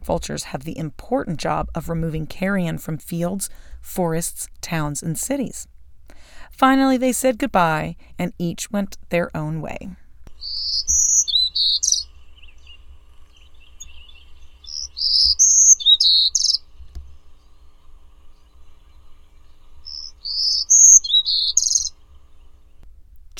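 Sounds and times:
speech: 0.0s - 10.0s
bird singing bright high-pitched phrases: 10.3s - 22.8s.

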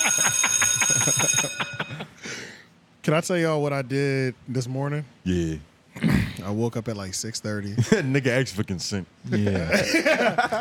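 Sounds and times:
bright bell ringing: 0.0s - 2.2s
speech: 3.1s - 5.7s, 6.4s - 10.5s
laughter: 9.3s - 10.5s.

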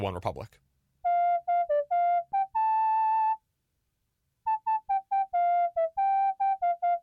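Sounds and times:
speech: 0.0s - 0.7s
whistled melody: 1.0s - 3.4s, 4.5s - 7.0s.

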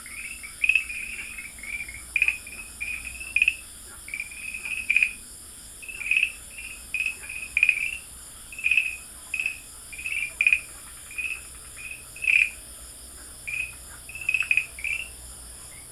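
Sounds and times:
farmland green tree frog chirping: 0.0s - 15.9s.

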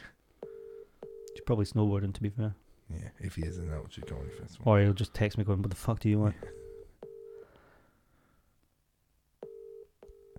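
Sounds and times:
outgoing phone call ringback tone: 0.4s - 1.4s, 4.0s - 4.6s, 6.6s - 7.4s, 9.4s - 10.3s
speech: 1.5s - 6.6s.

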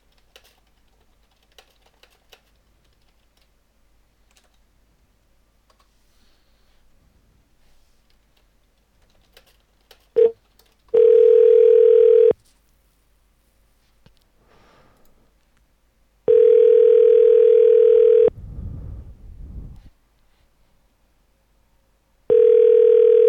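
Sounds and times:
telephone ringback tone heard through a handset: 11.0s - 12.3s, 16.3s - 18.3s, 22.3s - 23.2s.

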